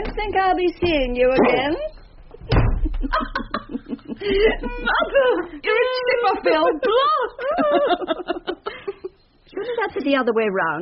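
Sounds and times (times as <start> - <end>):
speech: 0.2 - 1.9, 3.0 - 3.6, 4.2 - 8.6, 9.6 - 10.8
door being opened and shut: 0.8 - 3.3
laughter: 2.4 - 10.1.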